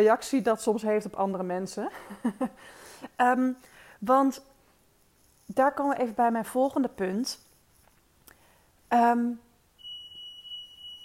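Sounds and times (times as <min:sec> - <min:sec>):
speech: 0:00.0 - 0:04.5, 0:05.5 - 0:07.4, 0:08.9 - 0:09.4
smoke detector alarm beeping: 0:09.8 - 0:11.0.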